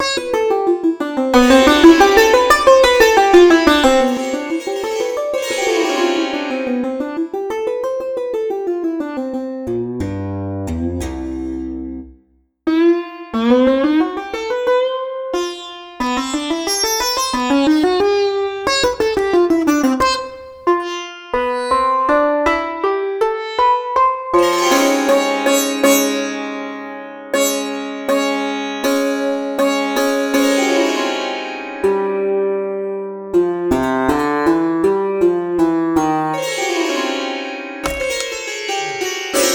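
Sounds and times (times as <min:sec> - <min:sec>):
sitar: 0:00.0 - 0:39.5.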